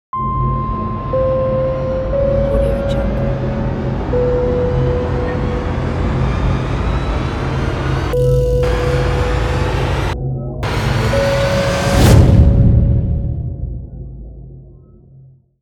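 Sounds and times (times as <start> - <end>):
horror logo sound: 0.2 - 15.2.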